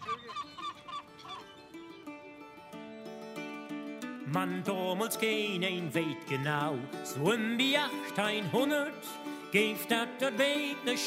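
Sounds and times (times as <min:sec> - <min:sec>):
seagulls calling at Flensburg harbour at sunrise: 0:00.0 - 0:03.6
speech: 0:04.3 - 0:11.0.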